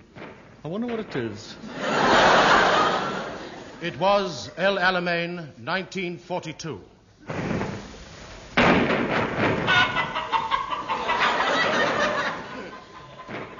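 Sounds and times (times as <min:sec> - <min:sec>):
speech: 0:00.6 - 0:02.0, 0:03.8 - 0:06.9
laughter: 0:01.6 - 0:04.0, 0:09.7 - 0:13.5
sharp thump: 0:07.2 - 0:07.9, 0:08.6 - 0:09.7
chickens clucking and squawking: 0:09.7 - 0:12.3.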